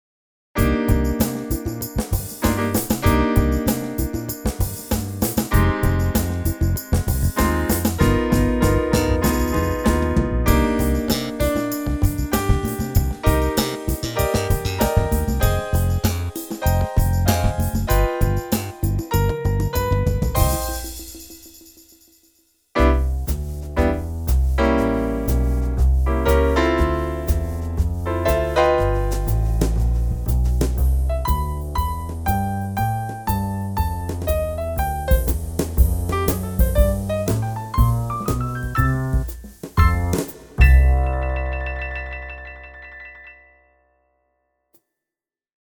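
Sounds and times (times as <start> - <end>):
large bass splits: 0.6 - 21.2, 22.8 - 43.3.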